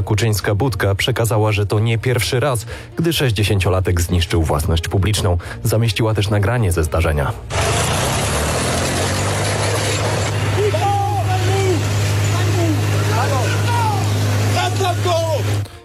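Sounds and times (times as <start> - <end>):
speech: 0.1 - 8.0
tractor engine idling with a deep rumble: 7.5 - 15.7.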